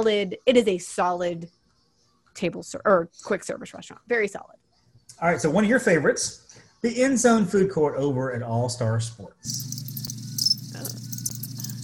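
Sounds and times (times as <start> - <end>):
speech: 0.0 - 1.6, 2.4 - 9.9
crickets chirping: 9.5 - 11.8.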